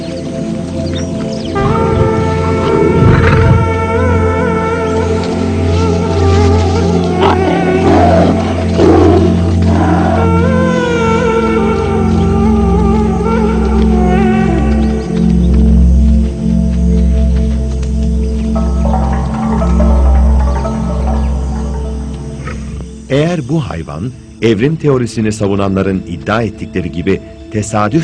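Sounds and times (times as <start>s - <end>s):
steady droning background: 0.0s - 28.0s
lion roaring and growling at a mother cheetah: 1.6s - 3.8s, 7.2s - 10.3s
speech: 23.7s - 28.0s.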